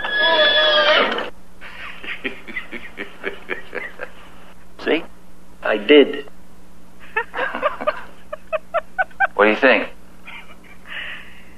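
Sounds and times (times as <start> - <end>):
loud shrill horse whinny: 0.0 - 1.3
laughter: 1.6 - 4.3, 7.0 - 9.6, 10.3 - 11.1
speech: 5.9 - 6.2.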